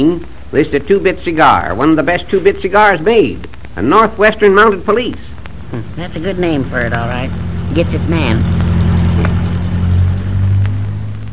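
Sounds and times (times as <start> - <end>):
speech: 0.0 - 8.6
car driving past without stopping: 5.5 - 11.3.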